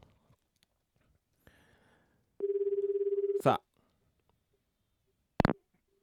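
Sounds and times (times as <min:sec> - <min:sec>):
warbling phone ringback tone: 0:02.4 - 0:03.5
speech: 0:03.4 - 0:03.7.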